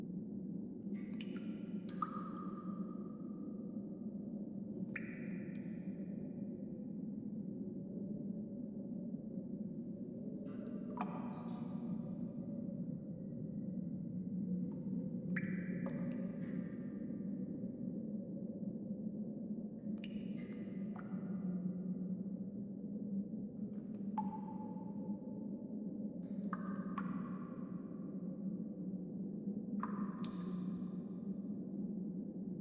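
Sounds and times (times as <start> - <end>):
cave ambience: 0.0 - 32.5.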